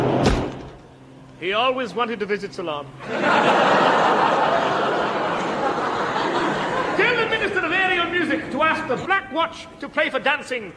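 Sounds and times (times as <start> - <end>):
door opening and closing: 0.2 - 0.9
speech: 1.4 - 4.8, 8.1 - 10.7
laughter: 3.0 - 9.2.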